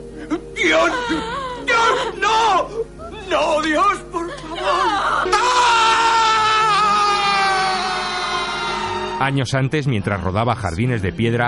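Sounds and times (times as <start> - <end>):
grieving father's broken choking sobs and gasps: 0.0 - 7.0
grieving man's long loud anguished wavering scream: 0.6 - 3.9, 4.6 - 9.2
speech: 9.3 - 11.4.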